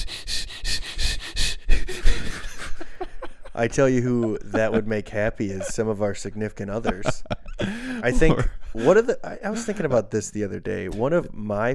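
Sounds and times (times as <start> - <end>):
voice imitating a drone air purifier robot sniffing: 0.0 - 3.0
laughter: 1.9 - 10.0
speech: 3.6 - 11.7.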